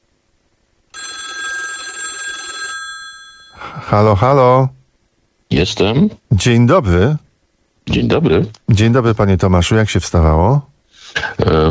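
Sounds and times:
telephone ringing: 0.9 - 4.1
speech: 3.8 - 4.8, 5.5 - 7.2, 7.9 - 10.7, 11.3 - 11.6.

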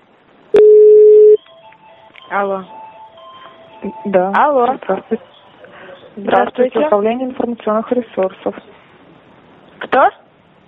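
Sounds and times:
telephone tones during a call transfer: 0.6 - 3.9
speech: 2.3 - 2.8, 3.8 - 5.3, 6.2 - 8.8, 10.0 - 10.2.

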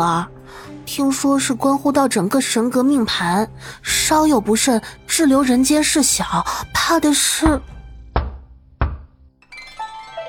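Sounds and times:
speech: 0.0 - 7.8
knocking on a jade stone door: 7.4 - 9.2.

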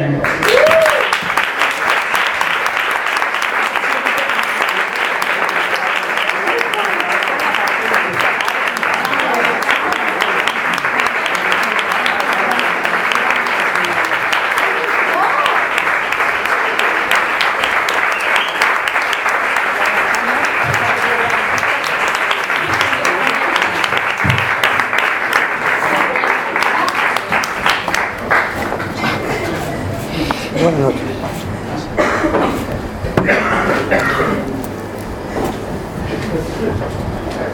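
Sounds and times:
audience applause at an evening event: 0.0 - 31.2, 31.9 - 36.8.

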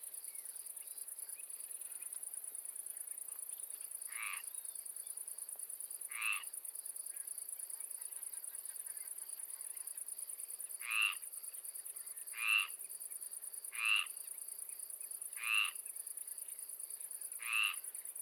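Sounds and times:
faint pulsing insect tone: 0.0 - 18.2
frog giving rasping croaks in a swamp: 4.1 - 4.5, 6.1 - 6.5, 10.8 - 11.2, 12.3 - 12.8, 13.7 - 14.1, 15.4 - 15.8, 17.4 - 17.8.

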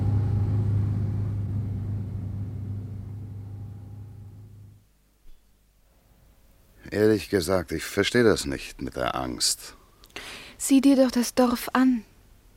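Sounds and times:
car engine rumble as car pulls away: 0.0 - 4.8
speech: 6.9 - 9.8, 10.6 - 12.1.

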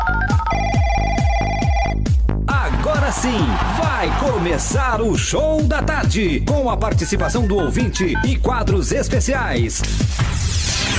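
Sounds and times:
electronic telephone ringtone: 0.0 - 2.0
speech: 3.1 - 10.9.

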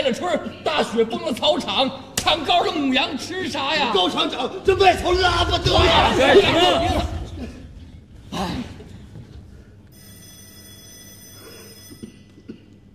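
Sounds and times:
speech: 0.0 - 7.2
telephone ringing: 9.9 - 12.4.

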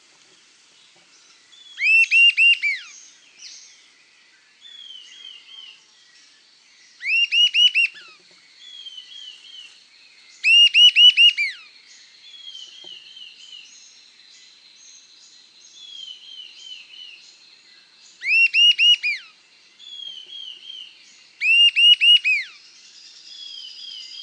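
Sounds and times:
sibilant sirystes Sirystes sibilator sibilator calling with ringing whistled notes: 1.8 - 3.0, 7.0 - 8.1, 10.4 - 11.6, 18.2 - 19.3, 21.4 - 22.6.

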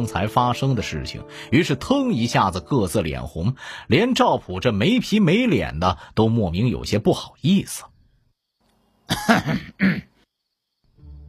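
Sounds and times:
speech: 0.0 - 7.9, 9.1 - 10.1
man coughing: 9.1 - 10.1.

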